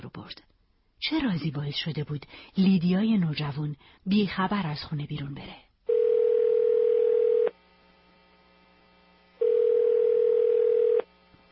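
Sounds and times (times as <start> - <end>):
speech: 0.1 - 5.7
telephone ringback tones before call answered: 5.9 - 7.5, 9.4 - 11.1.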